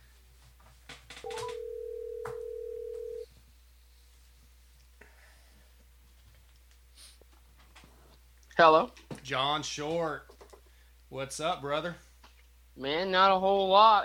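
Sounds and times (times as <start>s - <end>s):
phone call ringback tone: 1.2s - 3.2s
speech: 8.6s - 10.4s, 11.1s - 12.1s, 12.8s - 14.0s.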